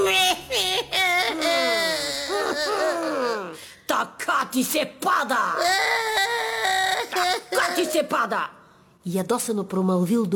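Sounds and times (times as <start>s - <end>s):
voice imitating a fisherman's wife crying and sobbing: 0.0s - 3.6s, 5.3s - 8.5s
speech: 4.5s - 6.0s, 8.0s - 10.3s.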